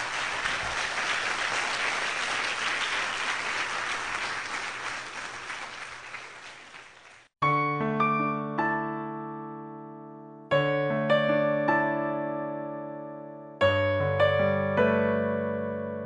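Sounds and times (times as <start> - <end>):
church congregation applauding: 0.0 - 7.3
music: 7.4 - 16.0.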